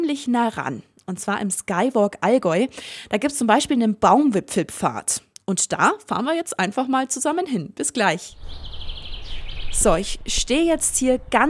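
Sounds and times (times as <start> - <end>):
speech: 0.1 - 8.9, 9.7 - 11.4
chorus of many birds chirping in a forest: 8.3 - 11.4.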